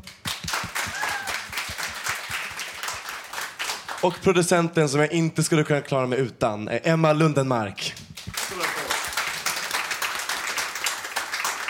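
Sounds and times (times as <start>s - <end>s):
dense overlapping hand claps from a small group: 0.0s - 4.1s, 7.8s - 11.6s
faint whoops and cheers: 0.8s - 1.6s
speech: 4.0s - 7.9s.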